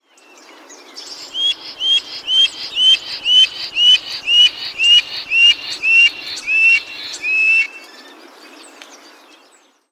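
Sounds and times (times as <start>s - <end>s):
background hiss: 0.9s - 8.0s
black stork calling with short rising whistled notes: 1.2s - 7.7s.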